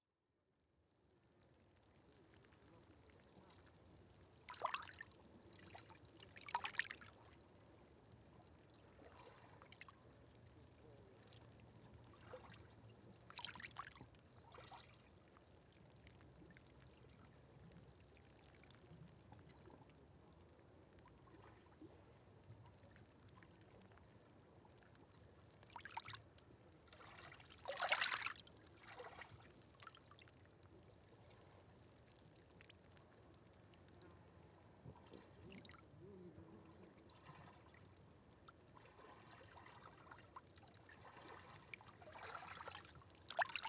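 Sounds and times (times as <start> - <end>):
very quiet lapping water hydrating kelp: 1.6 - 43.6.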